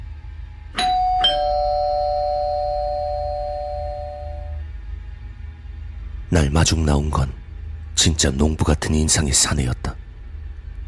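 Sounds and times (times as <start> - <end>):
low hum: 0.0 - 10.8
electronic two-tone doorbell chime of a large mansion: 0.8 - 4.6
speech: 6.5 - 7.4, 8.0 - 10.0.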